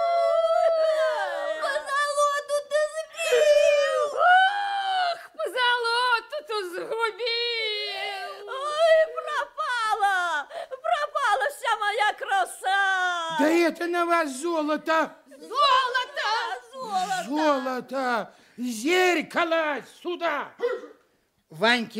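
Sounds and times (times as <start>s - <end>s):
three women sitting on the floor wailing and howling: 0.0s - 5.9s, 7.1s - 13.4s, 15.4s - 17.6s
speech: 13.7s - 15.2s, 17.3s - 20.6s, 21.6s - 21.9s.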